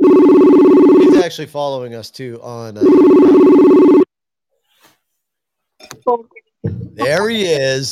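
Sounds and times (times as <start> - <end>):
telephone ringing: 0.0 - 1.3, 2.8 - 4.1
speech: 1.2 - 4.0, 6.1 - 6.4, 7.0 - 7.9.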